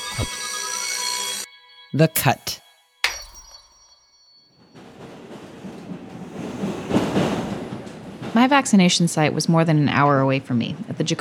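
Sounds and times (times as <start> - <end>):
speech: 0.2 - 0.4, 1.9 - 2.6, 8.4 - 11.2
bright metallic chime: 1.4 - 5.0
subway train rumbling on a ride in the Bronx: 4.6 - 11.2.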